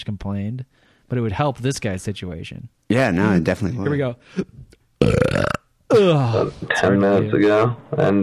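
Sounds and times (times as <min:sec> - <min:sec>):
speech: 0:00.0 - 0:08.2
loud burp: 0:05.0 - 0:06.8.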